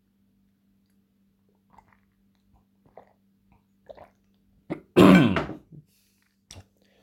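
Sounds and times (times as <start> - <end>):
soft swallowing or sipping noises: 1.5 - 4.4
man clearing his throat: 4.7 - 5.6.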